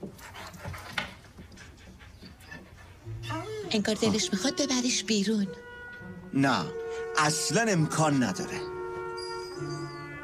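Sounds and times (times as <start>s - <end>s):
dog panting: 0.0s - 4.8s
dog whining or sniffing: 1.4s - 5.0s, 8.8s - 10.2s
speech: 3.7s - 5.7s, 6.3s - 8.7s.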